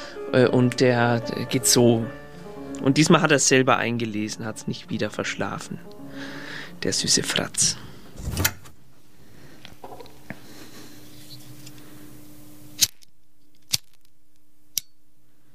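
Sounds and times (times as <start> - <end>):
speech: 0.2 - 2.2, 2.8 - 8.6
lighter flame hissing: 10.2 - 12.8
lighter striking: 12.7 - 13.1
crisp clicks: 12.8 - 14.9.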